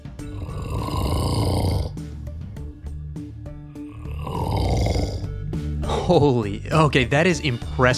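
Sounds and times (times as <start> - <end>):
man snoring loudly in his sleep: 0.0 - 2.2, 3.8 - 5.6
speech: 6.1 - 7.9.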